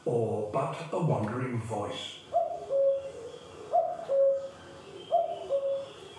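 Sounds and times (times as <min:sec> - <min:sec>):
speech: 0:00.0 - 0:02.2
male common cuckoo calling its two-note cu-coo: 0:02.2 - 0:06.1.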